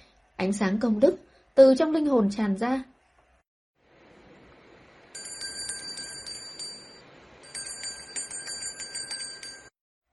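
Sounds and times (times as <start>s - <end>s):
speech: 0.4s - 2.9s
bright clear bell ringing: 5.1s - 9.8s.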